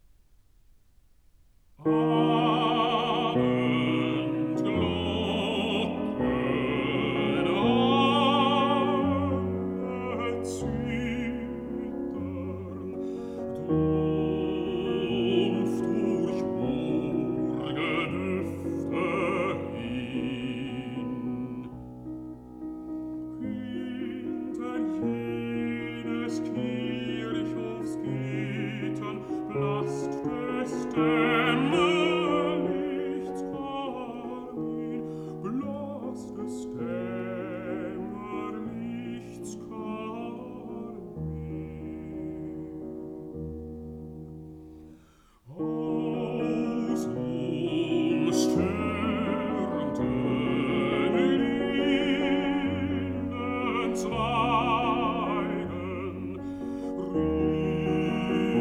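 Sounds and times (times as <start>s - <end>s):
piano accompanying a song: 0.0s - 58.5s
person singing a song with piano: 1.8s - 21.9s, 23.4s - 43.1s, 45.4s - 58.5s.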